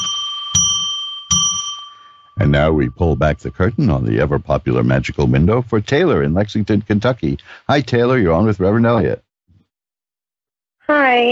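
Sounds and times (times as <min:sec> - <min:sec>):
bright bell struck and clanging: 0:00.0 - 0:03.2
speech: 0:02.4 - 0:09.2.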